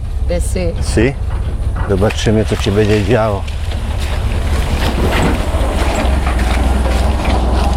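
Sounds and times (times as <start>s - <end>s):
speech: 0.3s - 3.6s
wind buffeting the microphone: 0.3s - 7.7s
three-wheeled motorbike engine riding down a ravine: 3.4s - 7.7s.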